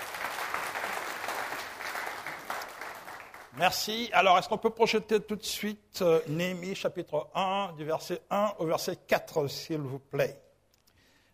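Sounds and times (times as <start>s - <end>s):
church congregation applauding: 0.0s - 3.9s
speech: 3.6s - 10.4s.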